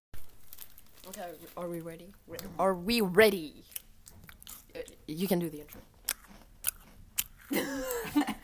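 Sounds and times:
speech: 0:01.3 - 0:03.8, 0:05.1 - 0:05.9
chewing noise: 0:03.6 - 0:08.2
crisp crunching bites of food: 0:03.7 - 0:04.9, 0:05.6 - 0:07.6.

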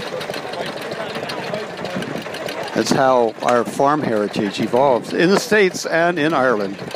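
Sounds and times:
stationary diesel engine running with knocking chug: 0:00.0 - 0:06.9
speech: 0:02.8 - 0:06.9.

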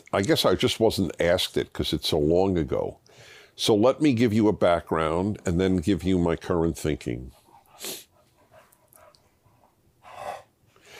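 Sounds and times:
speech: 0:00.1 - 0:08.0
dog huffing and panting: 0:07.3 - 0:10.5.

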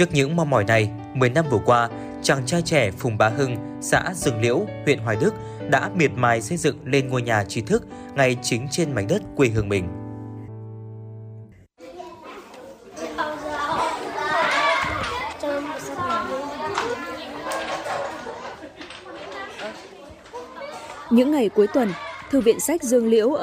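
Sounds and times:
speech: 0:00.0 - 0:10.0, 0:21.1 - 0:23.4
crowd of children chattering, laughing and playing indoors in a library: 0:11.8 - 0:23.4.

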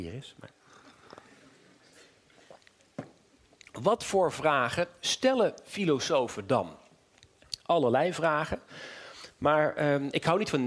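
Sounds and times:
speech: 0:00.0 - 0:00.6, 0:03.8 - 0:06.8, 0:07.7 - 0:10.6
sipping water: 0:00.6 - 0:03.8
swallows: 0:00.7 - 0:02.9.

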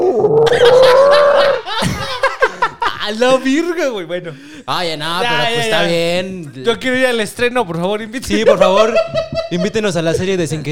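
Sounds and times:
loud drawn-out stomach growl: 0:00.0 - 0:00.5
short bursts of laughter: 0:00.4 - 0:03.1, 0:08.3 - 0:10.2
speech: 0:03.1 - 0:10.6.

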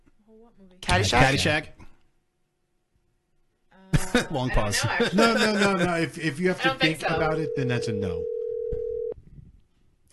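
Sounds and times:
speech: 0:00.3 - 0:01.8, 0:04.2 - 0:08.3
laughter: 0:03.9 - 0:07.0
short electronic phone ring: 0:07.0 - 0:09.2.

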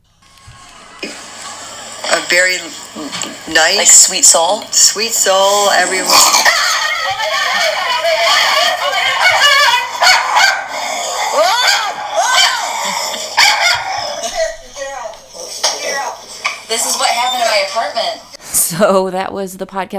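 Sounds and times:
parents imitating dogs barking and growling: 0:00.5 - 0:18.7
laughter: 0:00.5 - 0:19.1
speech: 0:02.2 - 0:11.8, 0:16.8 - 0:19.9.

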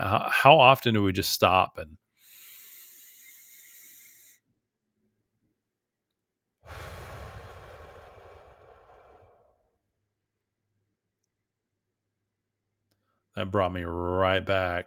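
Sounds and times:
speech: 0:00.1 - 0:02.0, 0:13.4 - 0:14.8
slow deep breathing exercise: 0:02.2 - 0:04.4, 0:06.6 - 0:09.7.

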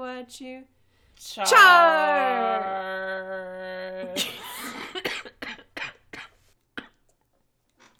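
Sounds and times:
speech: 0:00.3 - 0:02.8
person with a recent cough coughing: 0:04.0 - 0:07.0.

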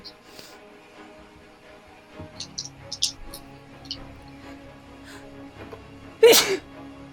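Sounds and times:
faint clicks: 0:02.4 - 0:04.1
sneeze: 0:06.2 - 0:06.7.

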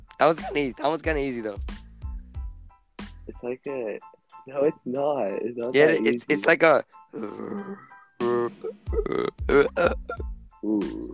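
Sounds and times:
speech: 0:00.2 - 0:01.7, 0:03.4 - 0:11.1
person imitating a zombie with guttural groans and grunts: 0:07.2 - 0:11.1.

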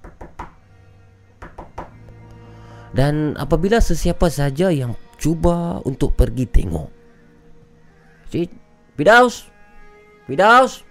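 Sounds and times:
knocking on living-room window glass at night: 0:00.0 - 0:00.6, 0:01.4 - 0:02.0
faint taps: 0:01.4 - 0:02.2
speech: 0:02.9 - 0:07.0, 0:08.3 - 0:09.5, 0:10.3 - 0:10.8.

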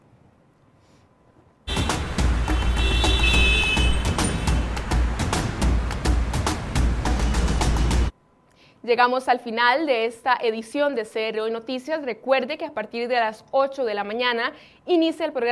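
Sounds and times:
morning road traffic passing in the Taras area toward Cartago: 0:01.7 - 0:08.1
speech: 0:08.9 - 0:15.5.

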